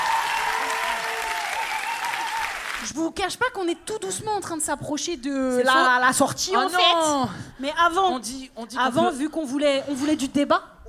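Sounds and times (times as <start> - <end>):
whistles and whoops from the crowd: 0.0 - 2.6
audience applause with cheering: 0.0 - 2.8
speech: 2.8 - 10.8.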